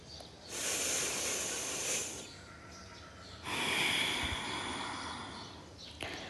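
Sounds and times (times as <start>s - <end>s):
deep breathing during Bhastrika pranayama: 0.4s - 2.3s, 3.4s - 6.2s.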